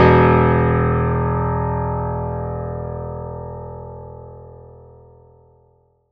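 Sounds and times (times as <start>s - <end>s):
low piano notes: 0.0s - 4.9s.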